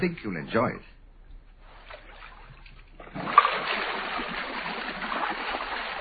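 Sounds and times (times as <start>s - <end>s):
speech: 0.0s - 0.9s
whirlpool bath water churning and bubbling: 1.6s - 5.9s.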